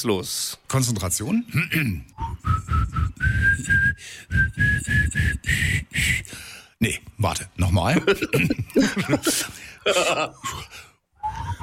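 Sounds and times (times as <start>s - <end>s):
speech: 0.0s - 2.7s, 3.3s - 10.9s
person whistling a bouncy Schlager pop melody: 2.2s - 5.8s, 11.2s - 11.6s
laughter: 7.9s - 10.4s.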